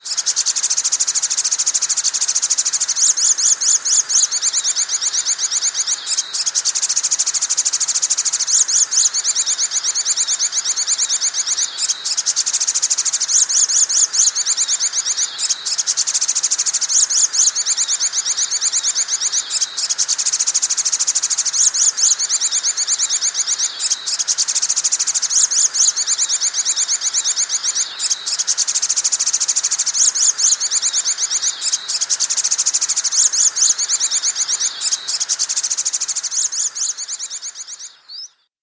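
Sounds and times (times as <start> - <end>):
sunbird calling: 0.0 - 38.5.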